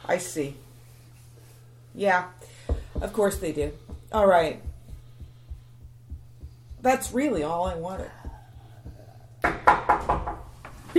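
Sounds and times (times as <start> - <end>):
hum: 0.0 - 10.9
speech: 0.1 - 0.7, 2.0 - 4.7, 6.8 - 8.2
knocking on the door of a shuttle: 2.6 - 10.5.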